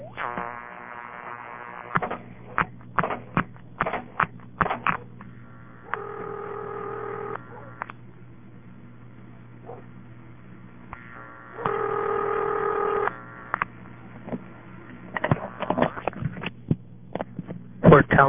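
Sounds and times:
low phone line hum: 0:00.0 - 0:18.2
telephone ringing tone over a phone line: 0:05.9 - 0:07.4, 0:11.2 - 0:13.5.

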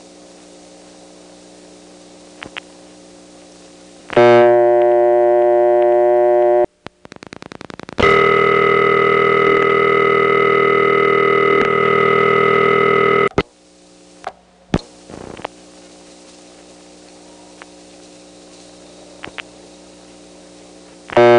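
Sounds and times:
telephone dial tone on a telephone test line: 0:04.2 - 0:06.7, 0:08.0 - 0:13.4
sharp clicks: 0:06.8 - 0:08.0.

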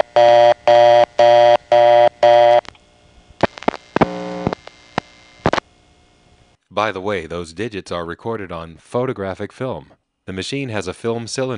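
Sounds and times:
telephone reorder tone from a step-by-step exchange: 0:00.0 - 0:02.7, 0:03.4 - 0:04.7
speech: 0:06.8 - 0:11.5.

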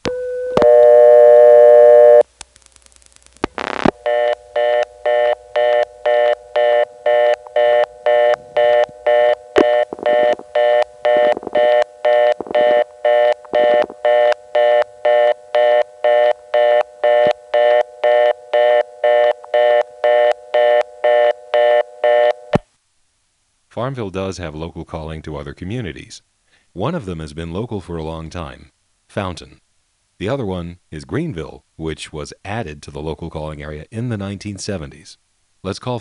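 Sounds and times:
rapid reorder signal beeps on a rural local switching terminal: 0:00.0 - 0:02.2, 0:03.6 - 0:22.6
steady telephone exchange tone: 0:00.0 - 0:02.3, 0:03.6 - 0:22.6
speech: 0:23.9 - 0:29.6, 0:30.2 - 0:36.0.

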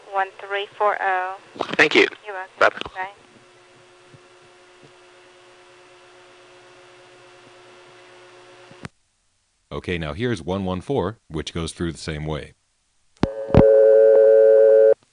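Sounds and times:
speech: 0:00.2 - 0:03.2, 0:09.7 - 0:12.6
telephone power ring tone on a phone company line: 0:13.3 - 0:15.0.

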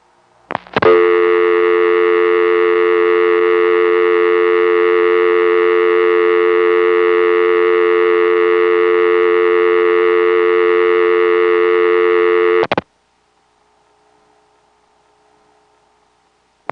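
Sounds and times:
telephone dial tone: 0:00.8 - 0:12.8.

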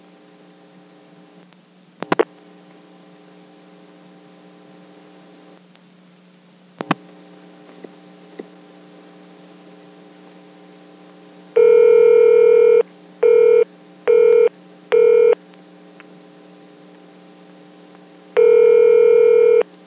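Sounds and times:
humming phone line: 0:11.5 - 0:15.4, 0:18.4 - 0:19.7
electronic telephone dialing tones: 0:11.6 - 0:15.4, 0:18.4 - 0:19.6.

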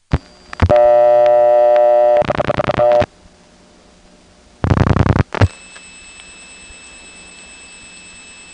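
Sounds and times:
2600 Hz tone dialing into N3 carrier telephone trunk: 0:00.1 - 0:03.1, 0:04.6 - 0:08.5
thin high tone: 0:05.5 - 0:08.5.

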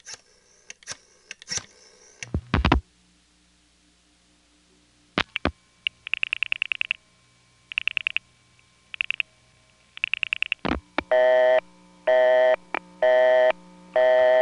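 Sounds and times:
clicks: 0:05.2 - 0:07.0, 0:07.7 - 0:08.2, 0:08.9 - 0:09.2, 0:10.0 - 0:11.1
telephone line busy signal from a second home line: 0:11.1 - 0:14.4.

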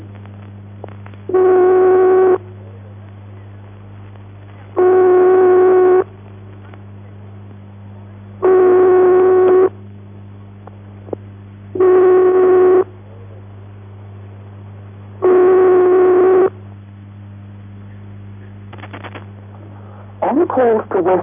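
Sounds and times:
faint constant telephone line hum: 0:00.0 - 0:21.2
speech: 0:01.3 - 0:01.5
continental telephone ringing tone: 0:01.3 - 0:02.4, 0:04.8 - 0:06.1, 0:08.4 - 0:09.7, 0:11.8 - 0:12.9, 0:15.2 - 0:16.5.

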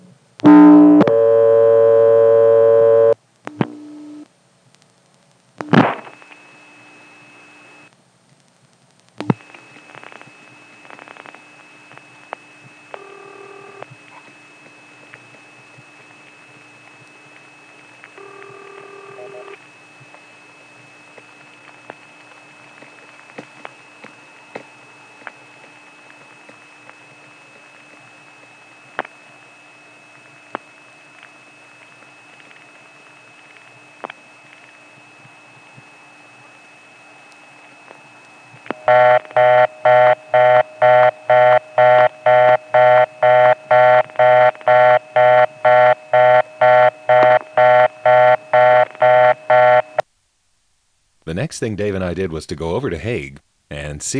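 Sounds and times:
long steady high phone line timeout tone: 0:00.4 - 0:04.2, 0:16.4 - 0:20.5, 0:38.7 - 0:50.0
phone line dialing clicks and tone bursts: 0:18.2 - 0:19.6, 0:38.7 - 0:50.0
speech: 0:51.3 - 0:53.4, 0:54.0 - 0:54.1.

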